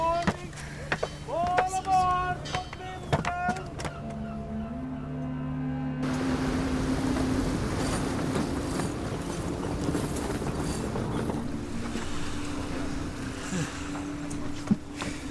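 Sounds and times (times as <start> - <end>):
boat engine rumbling in a harbor: 0.0 - 15.2
lapping waves in a harbor: 6.0 - 15.2.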